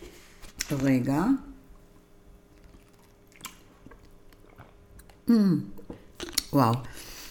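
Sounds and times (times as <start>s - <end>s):
speech: 0.7s - 1.5s, 5.3s - 5.8s, 6.6s - 7.0s
person sipping and swallowing water with aloe vera: 2.4s - 7.0s
squishy slurp: 2.5s - 5.2s.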